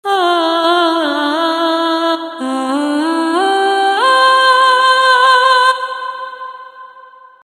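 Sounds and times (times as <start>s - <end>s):
time-stretched solo vocal: 0.0s - 7.4s.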